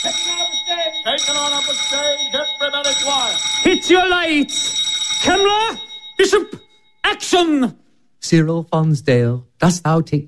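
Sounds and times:
electric bell ringing on a film set as the signal before a take: 0.0 - 7.6
speech: 1.3 - 10.2.

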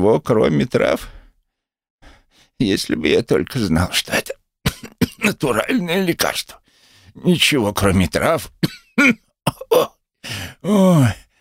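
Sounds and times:
speech: 0.0 - 1.2, 2.6 - 4.3, 5.2 - 11.2
man coughing and clearing his throat: 4.7 - 5.6, 8.6 - 10.0
man letting out a drawn-out voiced groan: 9.5 - 11.3.

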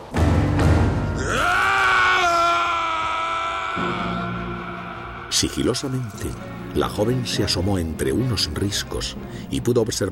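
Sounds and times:
scream: 1.2 - 5.4
speech: 5.4 - 10.1.

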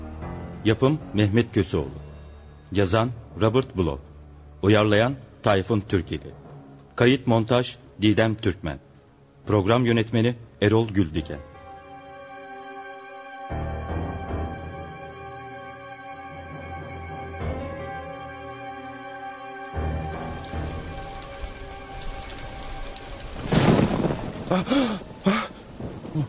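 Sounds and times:
speech: 0.6 - 2.0, 2.7 - 6.4, 7.0 - 8.9, 9.5 - 11.5
sudden heavy downpour: 19.8 - 26.2
thunder: 20.0 - 26.2.

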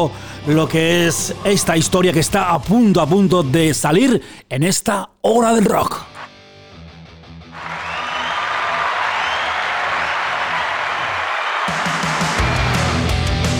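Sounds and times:
speech: 0.0 - 6.1
applause sound effect: 7.5 - 13.1.

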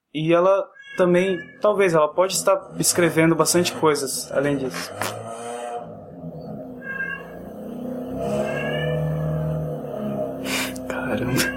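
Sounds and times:
speech: 0.2 - 5.5
cat meowing: 0.7 - 1.8, 6.8 - 9.6, 11.2 - 11.5.

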